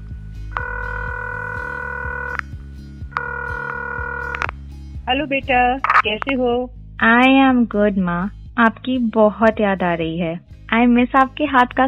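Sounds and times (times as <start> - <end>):
soft rhythmic beat: 0.0 - 11.8
electronic phone ringback tones: 0.5 - 2.5, 3.1 - 4.5
speech: 5.1 - 11.8.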